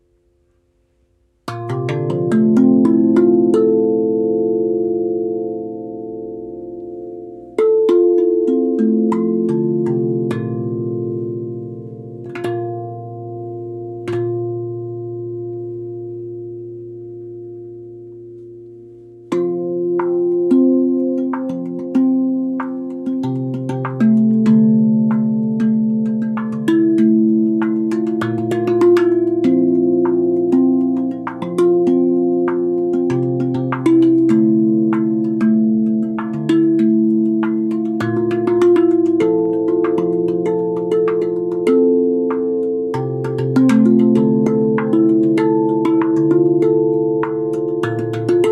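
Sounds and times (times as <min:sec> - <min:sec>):
Rav Vast tongue drum playing in D minor: 0:01.4 - 0:48.4.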